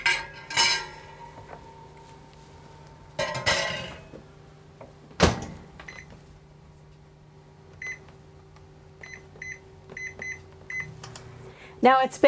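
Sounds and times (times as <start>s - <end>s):
low convection microwave oven hum: 0.0s - 12.2s
baking pan clanking onto low metal rack of convection microwave oven: 3.2s - 4.1s
speech: 11.8s - 12.2s.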